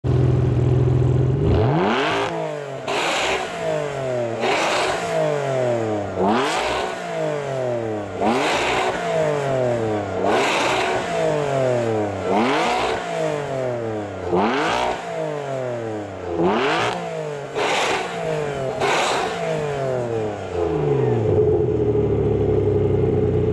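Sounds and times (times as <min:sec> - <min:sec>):
Ferrari 612 Scaglietti: 0:00.0 - 0:23.5.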